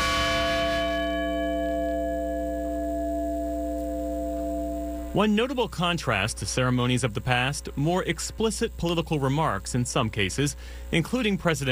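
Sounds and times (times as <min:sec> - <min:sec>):
large memorial bell tolling: 0:00.0 - 0:05.5
speech: 0:05.2 - 0:11.7.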